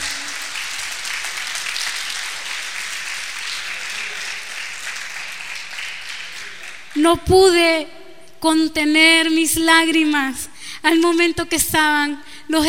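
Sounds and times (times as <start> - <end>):
audience applauding: 0.0 - 7.0
speech: 7.0 - 12.6.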